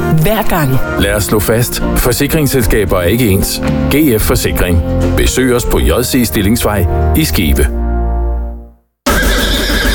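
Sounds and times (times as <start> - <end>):
speech: 0.1 - 7.9
horse neighing at a harness-racing race day: 9.1 - 9.9.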